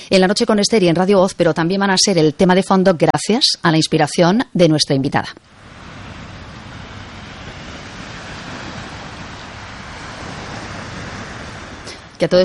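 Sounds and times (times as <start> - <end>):
speech: 0.1 - 5.6, 12.2 - 12.4
sea surf rushing: 5.4 - 12.4.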